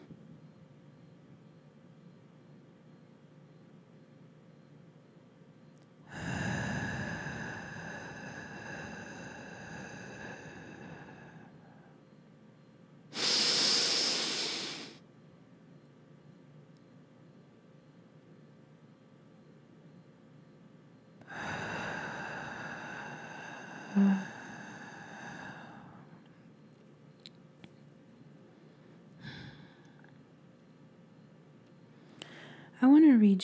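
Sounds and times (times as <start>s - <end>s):
slow deep breathing exercise: 6.1s - 12.0s, 13.2s - 15.0s, 21.2s - 26.4s, 28.5s - 30.2s, 32.0s - 32.8s
speech: 32.9s - 33.4s.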